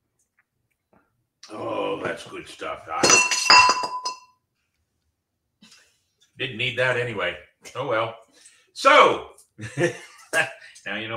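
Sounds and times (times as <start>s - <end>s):
speech: 1.5s - 4.0s, 6.4s - 11.1s
glass object knocked over clinking: 3.0s - 4.3s.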